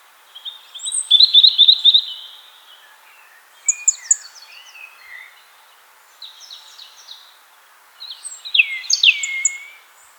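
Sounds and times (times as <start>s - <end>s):
European robin Erithacus rubecula singing: 0.3s - 5.4s, 8.0s - 9.9s.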